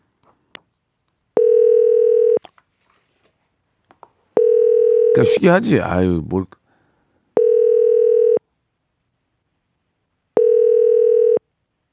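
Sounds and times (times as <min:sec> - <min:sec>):
outgoing phone call ringback tone, unanswered: 0:01.4 - 0:02.4, 0:04.4 - 0:05.4, 0:07.4 - 0:08.4, 0:10.4 - 0:11.4
speech: 0:05.2 - 0:06.6.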